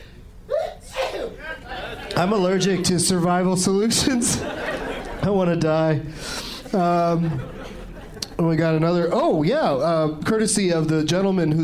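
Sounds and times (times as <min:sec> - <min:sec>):
person sneezing: 0:00.5 - 0:01.4
laughter: 0:01.2 - 0:09.2
speech: 0:02.2 - 0:07.6, 0:08.4 - 0:11.6.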